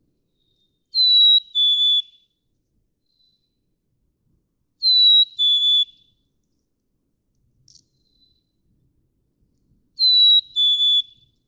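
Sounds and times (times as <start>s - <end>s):
black-capped chickadee whistled song: 0.4s - 2.3s, 4.8s - 6.2s, 10.0s - 11.4s.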